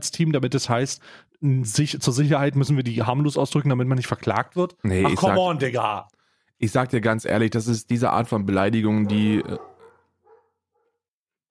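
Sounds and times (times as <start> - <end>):
speech: 0.2 - 9.7
two dogs barking: 8.9 - 11.0.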